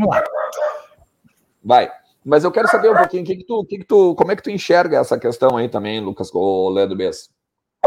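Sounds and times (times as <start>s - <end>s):
speech: 0.0s - 0.3s, 1.6s - 7.8s
single sharp dog bark: 0.1s - 1.0s, 2.6s - 3.1s.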